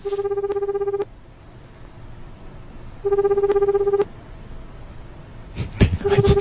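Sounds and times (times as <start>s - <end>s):
telephone ringback tone of an unanswered call: 0.0s - 1.1s, 3.0s - 4.1s, 6.0s - 6.3s.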